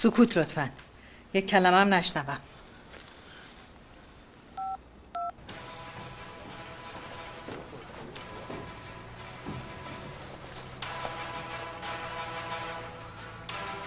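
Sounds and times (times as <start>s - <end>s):
speech: 0.0s - 2.6s
dual-tone beeps of a telephone number being dialed: 4.6s - 5.3s.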